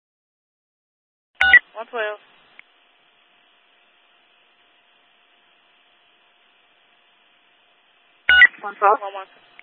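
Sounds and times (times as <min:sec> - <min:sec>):
electronic telephone tones: 0:01.4 - 0:01.6, 0:08.3 - 0:08.6
speech: 0:01.8 - 0:02.4, 0:08.6 - 0:09.6.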